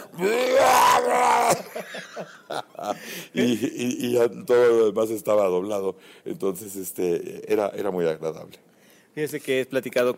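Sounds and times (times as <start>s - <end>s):
person grunting with effortful vocal bursts: 0.0s - 1.8s
person imitating a voice-acting scream for cartoon dubbing: 0.0s - 1.9s
speech: 0.2s - 0.4s, 1.5s - 10.1s
laughter: 1.5s - 3.6s.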